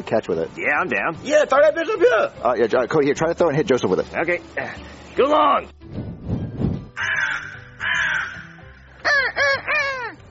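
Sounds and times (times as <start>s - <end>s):
speech: 0.0s - 5.8s
low thumps: 5.8s - 7.0s
crow cawing: 7.0s - 10.2s.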